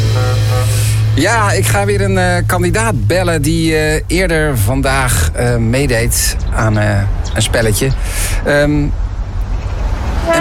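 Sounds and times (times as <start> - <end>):
car horn honking impatiently: 0.0 - 1.2, 10.2 - 10.4
steady low engine rumble: 0.0 - 10.4
speech: 1.2 - 9.0.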